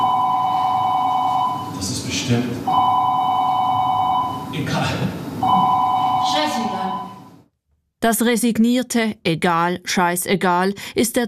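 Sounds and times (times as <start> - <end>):
telephone ringing in a stage play: 0.0 - 1.8, 2.7 - 4.5, 5.4 - 7.4
speech: 2.3 - 2.8, 8.0 - 11.2.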